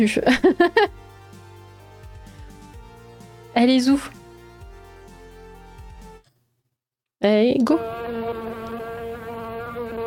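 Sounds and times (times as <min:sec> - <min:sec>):
speech: 0:00.0 - 0:01.0, 0:03.6 - 0:04.2, 0:07.2 - 0:08.1
laughter: 0:00.3 - 0:00.9
housefly buzzing: 0:07.7 - 0:10.0.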